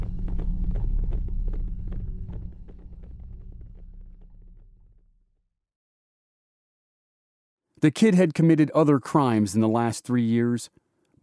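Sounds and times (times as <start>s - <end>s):
horse with a rider galloping out of town: 0.0s - 4.6s
low rumble: 0.0s - 5.5s
speech: 7.8s - 11.2s.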